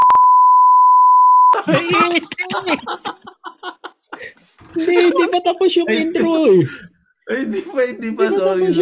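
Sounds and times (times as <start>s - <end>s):
loud steady single-pitch censor bleep: 0.0s - 1.6s
speech: 1.6s - 3.3s, 4.2s - 8.8s
chuckling laughter: 1.6s - 5.6s.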